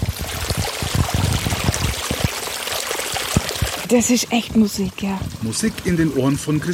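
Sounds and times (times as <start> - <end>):
low gurgling bursts of water: 0.0 - 6.7
pumped water pouring into a brook during a dry spell: 0.0 - 6.7
speech: 3.9 - 6.7.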